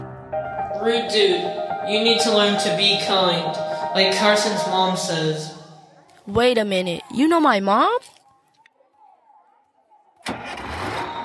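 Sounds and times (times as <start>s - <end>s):
speech: 0.4s - 5.5s, 6.3s - 8.1s
large bus engine starting and rumbling: 10.2s - 11.2s.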